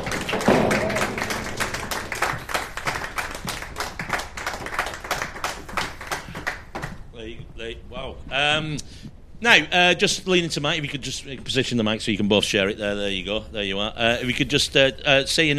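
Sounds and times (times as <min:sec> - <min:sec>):
crowd applauding: 0:00.0 - 0:07.0
speech: 0:07.7 - 0:15.5.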